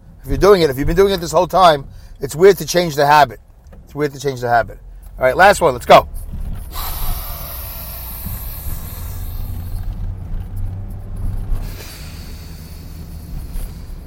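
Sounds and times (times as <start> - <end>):
speech: 0.2 - 6.8
deep heavy breaths drawn and pushed through the nose: 1.9 - 2.2, 6.6 - 10.2, 11.4 - 14.0.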